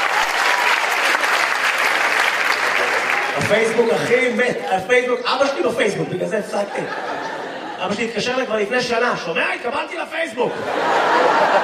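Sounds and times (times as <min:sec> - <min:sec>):
audience applause: 0:00.0 - 0:04.9
speech: 0:03.5 - 0:07.1, 0:07.8 - 0:11.6
laughter: 0:05.7 - 0:08.8, 0:10.3 - 0:11.6.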